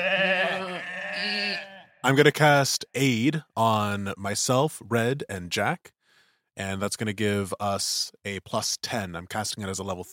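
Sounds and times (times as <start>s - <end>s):
sheep bleating: 0.0s - 2.0s
speech: 2.0s - 6.0s, 6.6s - 10.1s.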